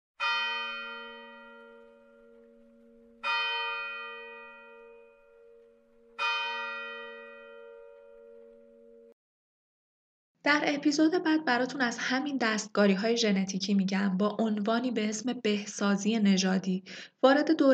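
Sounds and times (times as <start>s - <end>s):
church bell tolling: 0.2s - 9.2s
speech: 10.5s - 17.7s.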